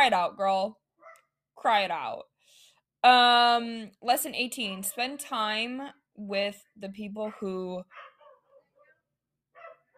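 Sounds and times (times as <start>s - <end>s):
speech: 0.0s - 0.8s, 1.6s - 2.3s, 3.0s - 8.1s
dog barking in yaps: 1.0s - 1.3s, 7.3s - 9.9s.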